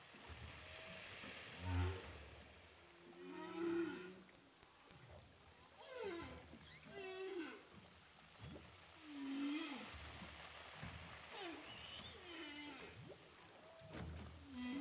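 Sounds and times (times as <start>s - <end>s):
steady ocean hiss recorded with a DPA hydrophone: 0.0s - 4.3s, 8.9s - 13.7s, 14.4s - 14.7s
humpback whale calls underwater off Saint-Paul, Réunion: 0.9s - 2.2s, 3.0s - 4.4s, 5.8s - 7.8s, 9.0s - 10.1s, 11.3s - 14.7s.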